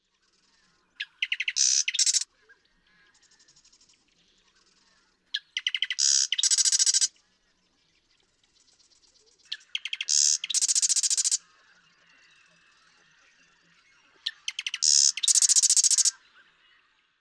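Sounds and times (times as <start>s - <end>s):
Marsh Wren singing: 1.0s - 2.2s, 5.4s - 7.1s, 9.5s - 11.4s, 14.3s - 16.2s.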